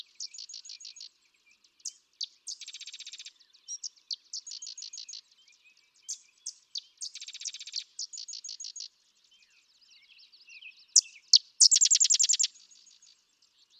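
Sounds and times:
sedge wren song with chips and staccato trills: 0:00.2 - 0:01.1, 0:01.8 - 0:03.3, 0:06.5 - 0:08.9, 0:11.0 - 0:13.1.

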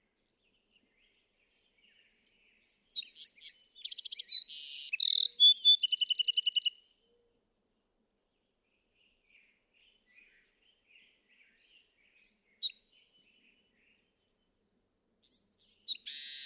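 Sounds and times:
Bewick's wren singing: 0:02.6 - 0:06.7, 0:15.2 - 0:16.4.

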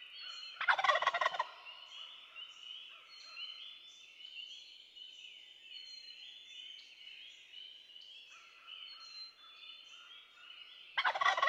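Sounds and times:
chorus of high twittering songbirds: 0:00.0 - 0:11.4
wild turkey gobbles: 0:00.6 - 0:01.7, 0:11.0 - 0:11.4.

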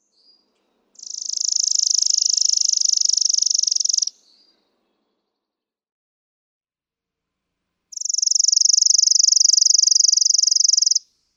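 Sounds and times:
Chipping Sparrow singing: 0:00.0 - 0:05.1, 0:07.9 - 0:11.0.

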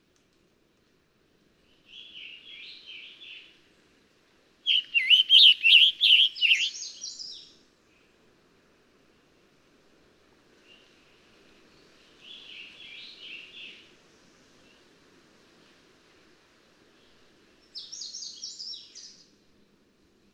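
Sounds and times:
scarlet tanager singing: 0:04.7 - 0:07.0.

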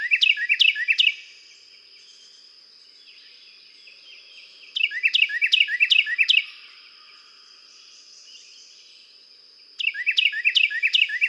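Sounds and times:
Carolina wren singing: 0:00.0 - 0:01.2, 0:04.7 - 0:06.6, 0:09.8 - 0:11.2.

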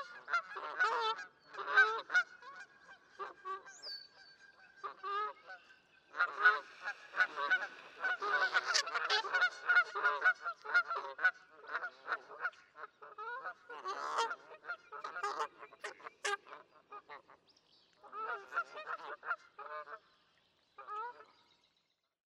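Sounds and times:
Canada geese honking: 0:00.0 - 0:03.8, 0:04.6 - 0:17.2.

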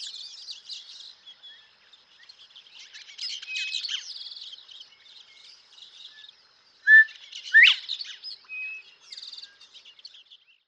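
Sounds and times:
faint high chirps from other birds: 0:01.4 - 0:10.6
thin buzzy trill from other birds: 0:06.9 - 0:07.9
northern bobwhite whistling call: 0:06.9 - 0:08.0.

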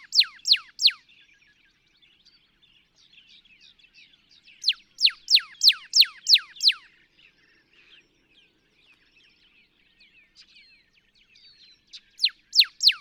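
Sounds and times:
Northern cardinal song: 0:00.0 - 0:01.0, 0:04.6 - 0:06.9, 0:12.2 - 0:13.0
soft Northern cardinal chatter: 0:00.0 - 0:13.0.

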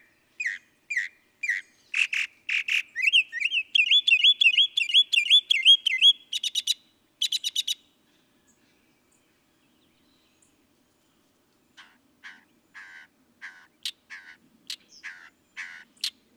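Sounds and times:
Northern mockingbird singing whistled notes and buzzy bursts: 0:00.4 - 0:07.8.

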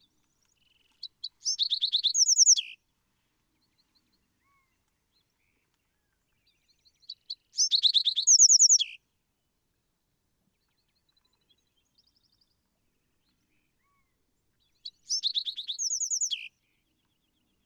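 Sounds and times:
Bewick's Wren song: 0:00.0 - 0:02.8, 0:06.8 - 0:09.0, 0:14.7 - 0:17.6.

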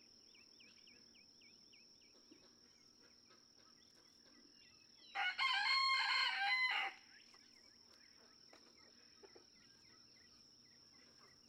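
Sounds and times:
Red junglefowl rooster crowing in a barnyard in Kentucky: 0:05.1 - 0:07.0.

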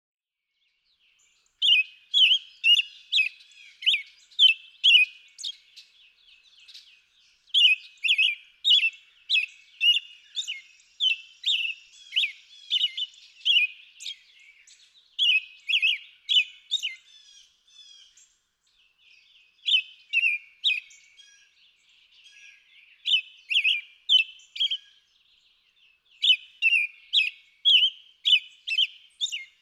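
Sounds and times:
American Robin: 0:00.6 - 0:29.5.

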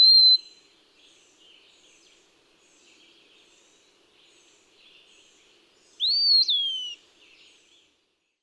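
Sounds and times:
Eastern wood-pewee singing slurred whistled phrases: 0:06.0 - 0:06.9.

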